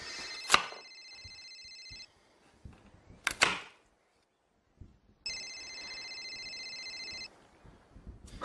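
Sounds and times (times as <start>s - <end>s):
telephone ringing: 0.1s - 2.2s, 5.2s - 7.4s.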